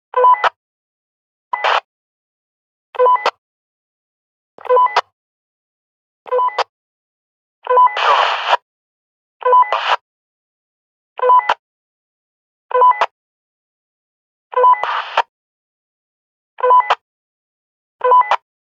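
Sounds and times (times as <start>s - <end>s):
handheld walkie talkie end beep: 0.1s - 0.6s, 1.6s - 1.9s, 3.0s - 3.4s, 4.6s - 5.1s, 6.3s - 6.7s, 7.6s - 8.6s, 9.4s - 10.0s, 11.2s - 11.6s, 12.7s - 13.2s, 14.5s - 15.3s, 16.6s - 17.0s, 18.0s - 18.5s
handheld walkie talkie squelch noise: 1.6s - 1.9s, 3.0s - 3.4s, 7.7s - 8.6s, 9.6s - 10.0s, 12.9s - 13.1s, 14.5s - 15.3s, 16.6s - 17.0s.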